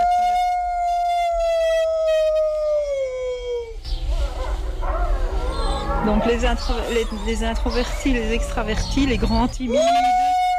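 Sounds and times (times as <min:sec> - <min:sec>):
wolf howling: 0:00.0 - 0:10.5
faint rumble: 0:03.7 - 0:09.9
speech: 0:06.0 - 0:10.2.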